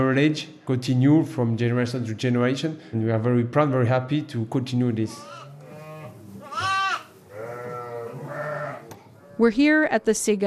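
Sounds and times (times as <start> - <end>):
speech: 0.0 - 5.4, 9.4 - 10.4
lambs bleating in a barn on a sheep dairy farm: 5.1 - 9.4.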